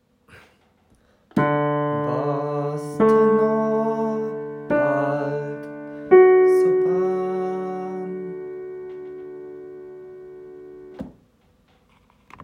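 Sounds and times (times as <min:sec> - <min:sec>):
Advent yodel tones: 0:01.6 - 0:09.0.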